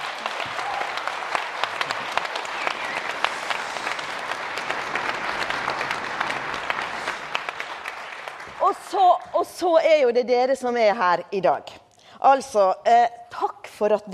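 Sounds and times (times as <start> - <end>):
audience applause: 0.0 - 9.1
speech: 9.6 - 14.1.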